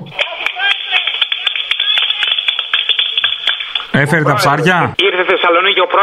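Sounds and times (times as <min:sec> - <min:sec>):
crowd applauding over a narrow phone-like line: 0:00.0 - 0:04.8
faint voices and cheering: 0:00.0 - 0:06.0
speech: 0:04.0 - 0:06.0.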